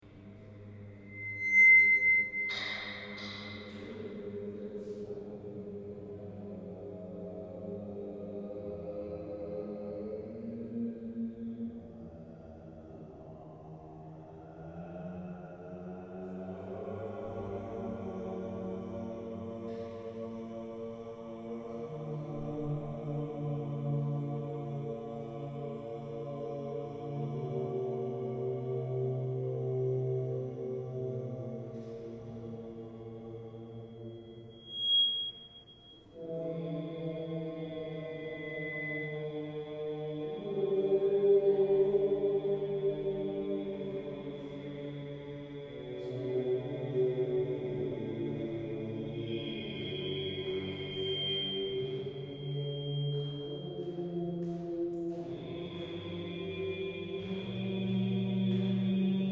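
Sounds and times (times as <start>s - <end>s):
choral chanting: 0.0s - 59.3s
whistling: 1.0s - 4.1s, 33.8s - 36.2s, 38.0s - 39.6s, 49.2s - 54.4s.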